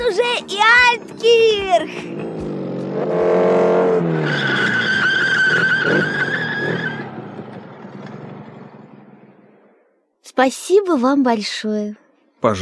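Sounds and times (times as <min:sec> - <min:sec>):
speech: 0:00.2 - 0:02.3, 0:03.0 - 0:03.4, 0:10.4 - 0:12.6
motorcycle tires screeching while skidding to a stop: 0:00.2 - 0:09.8
motorcycle engine revving: 0:00.5 - 0:09.8.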